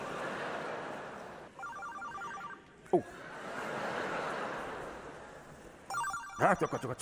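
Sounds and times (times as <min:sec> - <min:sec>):
laughter: 0:00.0 - 0:01.5, 0:02.9 - 0:05.7
mobile phone ringtone: 0:01.6 - 0:02.6, 0:05.9 - 0:06.9
speech: 0:02.9 - 0:03.3, 0:06.4 - 0:06.9.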